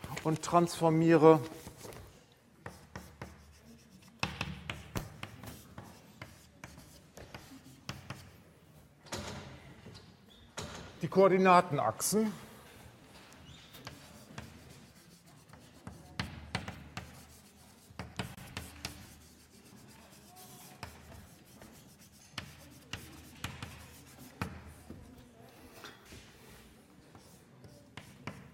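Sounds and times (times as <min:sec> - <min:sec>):
speech: 0:00.2 - 0:01.6, 0:11.2 - 0:12.4
pen scratching across a surface while writing a maths formula by hand: 0:02.6 - 0:08.4, 0:13.7 - 0:25.2, 0:27.1 - 0:28.5.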